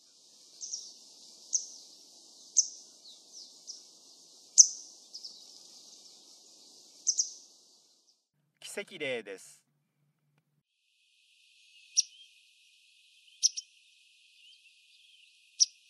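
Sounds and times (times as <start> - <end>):
Eurasian skylark singing: 0.0 - 7.8, 11.8 - 12.4, 13.0 - 15.8
speech: 8.8 - 9.6.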